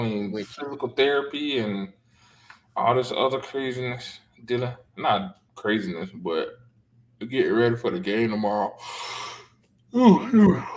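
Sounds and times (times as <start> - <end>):
speech: 0.0 - 2.0, 2.8 - 6.6, 7.2 - 9.3, 9.9 - 10.7
person yawning: 10.0 - 10.7.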